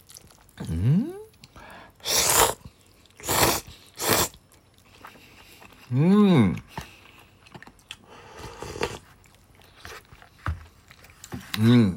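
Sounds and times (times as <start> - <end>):
slurping and chewing tonkotsu ramen noodles: 0.0 - 11.9
speech: 0.6 - 1.1, 5.9 - 6.6
person humming: 0.6 - 1.3.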